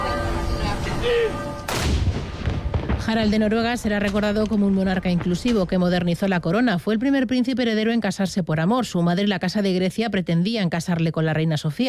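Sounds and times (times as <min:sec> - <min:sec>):
steady sustained ringing tones: 0:00.0 - 0:01.7
heavy cannon blast of army gun salute: 0:01.7 - 0:06.2
speech: 0:03.1 - 0:11.8.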